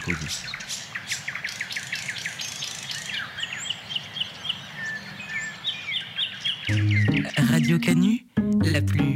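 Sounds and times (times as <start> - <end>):
speech: 0.0 - 0.6, 7.6 - 9.0
birds singing and chirping with trills and whistles: 0.0 - 8.0.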